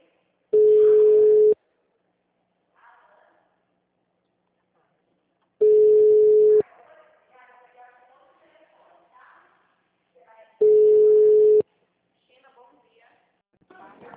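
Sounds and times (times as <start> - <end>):
ringback tone of an outgoing phone call: 0.6 - 1.6, 5.6 - 6.6, 10.6 - 11.6.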